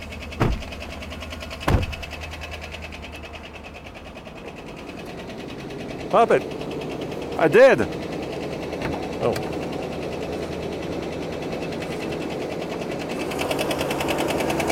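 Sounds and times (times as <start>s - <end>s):
well-worn car engine idling with its hood open: 0.0s - 14.7s
clunks: 0.2s - 2.3s, 8.8s - 9.8s
speech: 6.1s - 6.7s, 7.4s - 8.0s, 9.2s - 9.6s.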